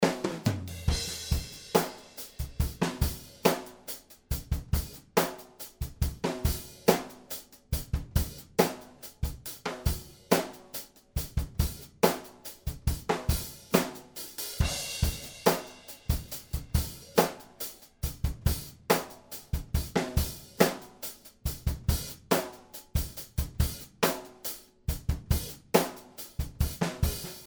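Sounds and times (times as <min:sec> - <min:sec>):
drums: 0:00.0 - 0:27.4.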